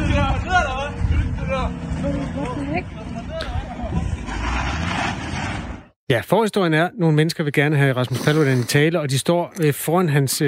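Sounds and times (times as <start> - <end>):
car engine and road rumble at speed: 0.0 - 5.9
speech: 6.1 - 10.4.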